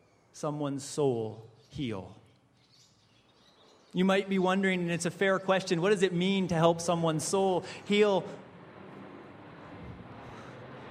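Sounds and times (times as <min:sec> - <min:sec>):
speech: 0:00.4 - 0:02.2, 0:03.9 - 0:08.4
airplane flying overhead: 0:04.1 - 0:10.8.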